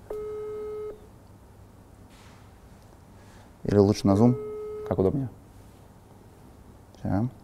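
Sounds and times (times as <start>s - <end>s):
steady electronic phone call tone of an unanswered WhatsApp call: 0.1s - 1.0s, 4.3s - 5.2s
speech: 3.7s - 5.4s, 7.0s - 7.4s.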